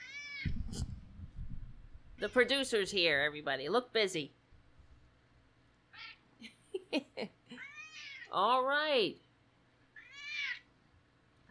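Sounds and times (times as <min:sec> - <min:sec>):
cat meowing: 0:00.0 - 0:00.6, 0:07.6 - 0:08.3, 0:10.0 - 0:10.6
thumps of a cat moving around: 0:00.5 - 0:02.2
speech: 0:02.2 - 0:04.4, 0:08.3 - 0:09.2.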